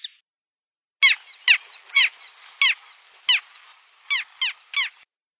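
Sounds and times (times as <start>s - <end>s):
Hydrocoloeus minutus calling: 1.0s - 5.0s.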